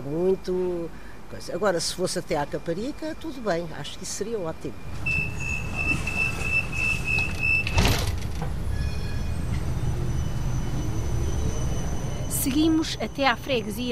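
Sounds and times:
speech: 0.1 - 5.2, 12.4 - 13.9
light rail tram rumbling in Almada: 1.6 - 13.9
high sustained tram warning tone: 4.7 - 7.9, 8.7 - 13.9.

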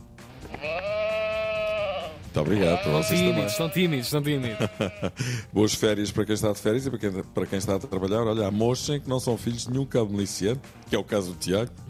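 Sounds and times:
sheep bleating: 0.3 - 5.2
speech: 0.6 - 1.1, 2.3 - 11.8
laughter: 4.2 - 5.6.

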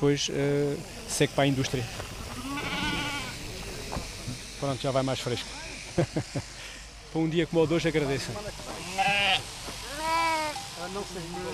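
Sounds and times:
speech: 0.0 - 2.2, 4.6 - 9.5, 10.8 - 11.5
low murmur: 0.0 - 7.2, 7.9 - 11.5
sheep bleating: 2.3 - 3.4, 8.8 - 10.6
laughter: 5.7 - 6.9.

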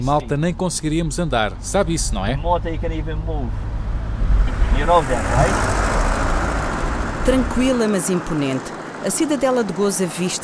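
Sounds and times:
speech: 0.0 - 3.7, 4.8 - 5.9, 7.2 - 10.4
road traffic rumbling along a main street on Gozo: 0.0 - 10.4
vehicle hissing past: 3.6 - 7.6.

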